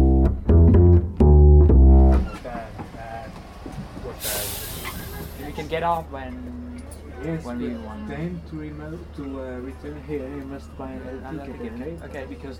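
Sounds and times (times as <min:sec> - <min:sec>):
tram ride rumbling in Porto Portugal: 0:00.2 - 0:06.7
hissing air burst from tram: 0:04.2 - 0:05.6
speech: 0:05.8 - 0:06.6, 0:07.2 - 0:12.5.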